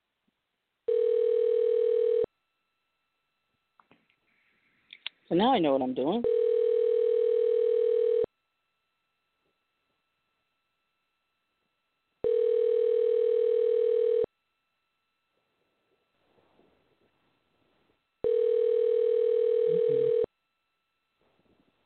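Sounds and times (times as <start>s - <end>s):
telephone tone: 0.9s - 2.3s, 6.2s - 8.3s, 12.2s - 14.3s, 18.2s - 20.3s
speech: 5.3s - 6.4s.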